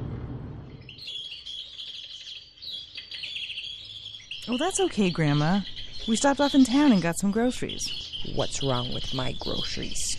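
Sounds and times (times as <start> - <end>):
low rumble: 0.0 - 1.0
birds chirping and squawking: 0.7 - 10.1
speech: 4.5 - 10.1.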